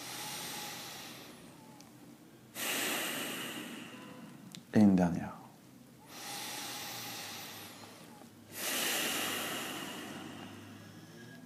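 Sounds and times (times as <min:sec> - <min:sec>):
deep breathing in and out through the nose: 0:00.0 - 0:01.5, 0:02.5 - 0:04.4, 0:06.0 - 0:11.4
speech: 0:04.8 - 0:05.4.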